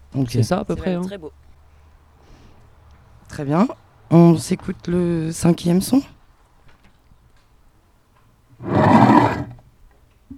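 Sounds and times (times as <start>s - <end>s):
speech: 0.2s - 1.5s, 3.4s - 6.2s
lion roar from a film studio logo: 8.6s - 9.6s.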